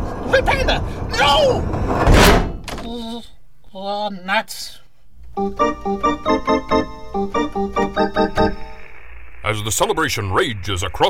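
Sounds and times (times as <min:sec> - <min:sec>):
speech: 0:00.3 - 0:04.8, 0:05.4 - 0:08.6, 0:09.4 - 0:11.0
heavy vault door slamming shut: 0:01.8 - 0:02.9.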